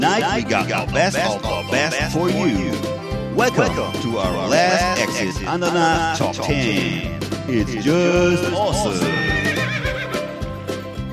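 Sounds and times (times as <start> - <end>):
speech: 0.0 - 9.4
horse neighing: 8.9 - 10.4.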